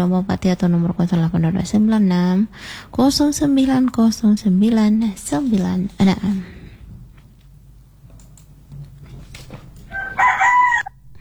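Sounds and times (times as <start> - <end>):
speech: 0.0 - 6.6
rooster crowing a strained rising cock-a-doodle-doo: 9.9 - 11.1.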